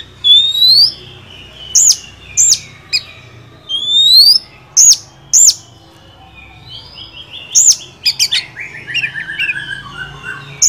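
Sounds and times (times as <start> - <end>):
Oriental magpie-robin whistles: 0.0 - 1.0, 3.7 - 5.6, 7.5 - 10.6.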